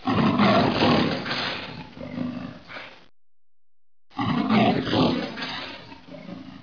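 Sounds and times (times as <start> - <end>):
leopard: 0.0 - 3.1, 4.1 - 6.6.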